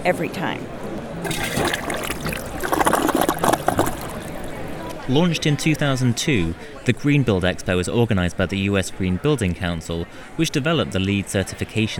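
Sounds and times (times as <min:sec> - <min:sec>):
speech: 0:00.0 - 0:01.8, 0:05.1 - 0:11.9
ultra high efficiency toilet flushing 1 gallon of water: 0:01.2 - 0:04.6.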